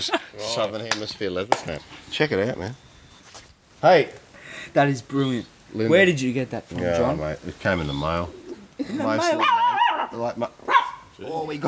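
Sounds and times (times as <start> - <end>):
speech: 0.0 - 2.9, 3.8 - 11.6
small dog yapping and barking: 9.3 - 11.1.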